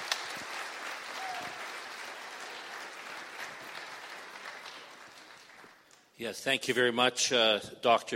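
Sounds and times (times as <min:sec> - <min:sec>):
audience applause: 0:00.0 - 0:05.9
speech: 0:06.2 - 0:08.1.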